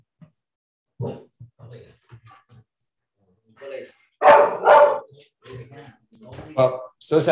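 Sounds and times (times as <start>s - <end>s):
speech: 1.0s - 1.3s, 6.6s - 7.3s
dog barking, protecting the house: 4.2s - 5.2s.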